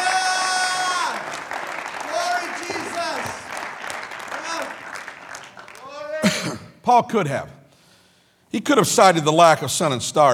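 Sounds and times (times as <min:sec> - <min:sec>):
church congregation clapping hands during a sermon: 0:00.0 - 0:06.6
speech: 0:06.9 - 0:07.6, 0:08.5 - 0:10.3.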